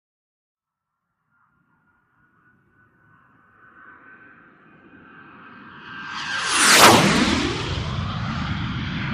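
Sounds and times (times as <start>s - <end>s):
gnat flying by with low fast whistle: 3.5s - 9.0s.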